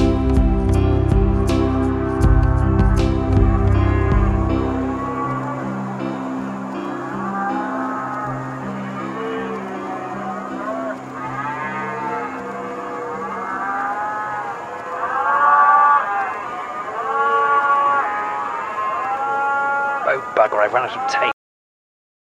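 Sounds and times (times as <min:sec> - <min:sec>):
deep low drone: 0:00.0 - 0:06.8
several pygmy cows mooing: 0:01.7 - 0:21.3.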